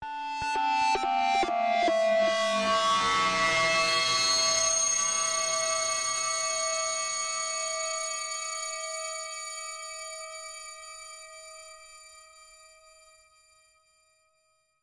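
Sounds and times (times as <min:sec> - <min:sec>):
descending guitar atmospherics: 0:00.4 - 0:10.6.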